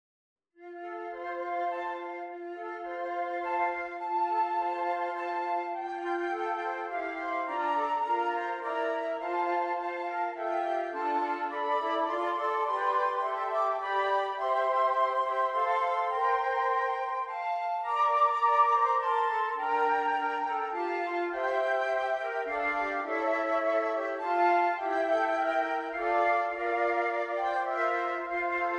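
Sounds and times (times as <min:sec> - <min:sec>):
flute quartet: 0:00.6 - 0:28.7.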